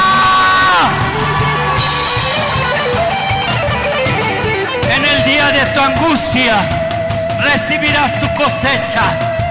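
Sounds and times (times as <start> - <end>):
church audience shouting and whooping a battle cry: 0.0 - 6.7
speech: 5.8 - 6.8, 7.4 - 9.4.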